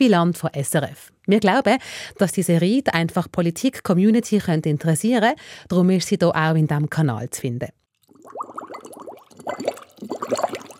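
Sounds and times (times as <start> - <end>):
speech: 0.0 - 8.4, 9.5 - 10.3
bubbles gurgling through a straw in a glass of water: 8.0 - 10.7.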